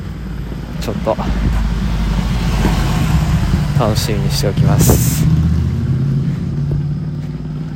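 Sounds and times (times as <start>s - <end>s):
motorcycle passing on a road: 0.0s - 7.7s
speech: 0.8s - 1.6s, 3.8s - 5.3s.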